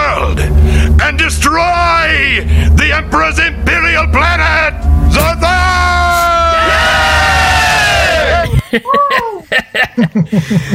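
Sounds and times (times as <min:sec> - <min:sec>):
speech: 0:01.1 - 0:05.6, 0:08.7 - 0:10.7
crowd of crew members cheering: 0:05.8 - 0:09.4
laughter: 0:08.2 - 0:10.7.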